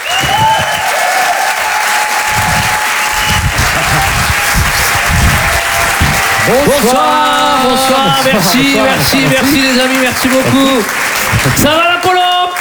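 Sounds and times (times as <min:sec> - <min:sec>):
laughter: 0:00.0 - 0:12.3
live stage-show audience clapping: 0:00.0 - 0:12.5
speech: 0:06.5 - 0:12.1.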